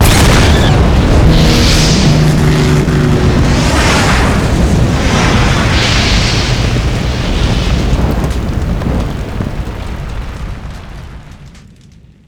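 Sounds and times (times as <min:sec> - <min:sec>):
plane exploding: 0:00.0 - 0:11.7.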